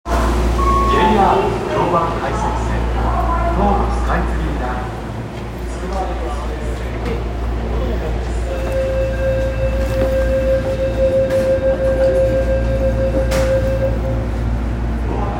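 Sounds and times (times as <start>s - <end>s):
Chiyoda Line train north of Kita-Senju: 0.1s - 15.3s.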